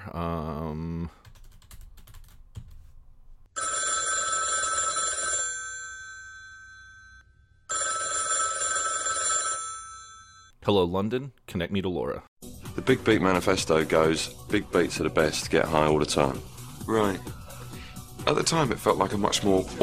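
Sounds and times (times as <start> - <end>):
telephone ringing with a shimmering bell tone: 3.6 - 10.6
speech: 10.7 - 17.4, 18.3 - 19.8.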